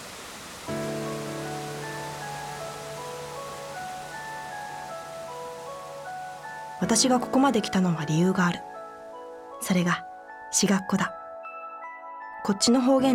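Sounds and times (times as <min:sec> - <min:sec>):
steam hissing from boiling hot spring water on a winter mountain in Yuzawa Akita: 0:00.0 - 0:04.2
speech: 0:06.8 - 0:08.7, 0:09.6 - 0:11.2, 0:12.4 - 0:13.1.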